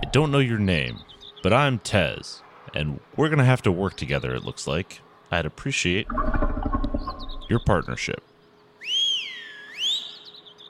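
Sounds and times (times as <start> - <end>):
speech: 0.1 - 6.5, 7.5 - 8.3
short clear human whistle: 8.8 - 10.2.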